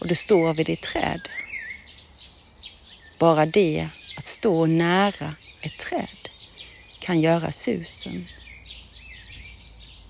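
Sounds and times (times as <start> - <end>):
small birds chirping and tweeting by a tree outdoors: 0.0 - 10.0
steady low hum of cars: 0.0 - 10.0
speech: 0.1 - 1.5, 3.2 - 6.2, 7.0 - 8.4.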